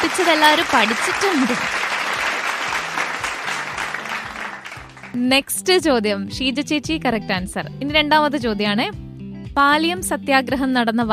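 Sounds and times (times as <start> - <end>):
applause from a group during a quiz session: 0.0 - 5.2
speech: 0.1 - 1.9, 5.2 - 9.0, 9.6 - 11.1.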